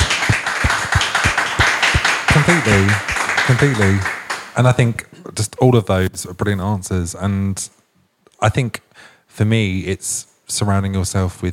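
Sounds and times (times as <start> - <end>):
small group applauding: 0.0 - 4.8
speech: 2.8 - 7.8, 8.4 - 11.5.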